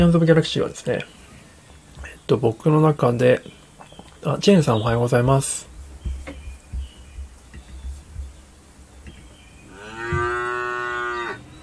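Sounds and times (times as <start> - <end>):
speech: 0.0 - 1.2, 2.3 - 3.6, 4.2 - 5.7
faint low thumps: 3.4 - 10.6
cow mooing: 9.7 - 11.5.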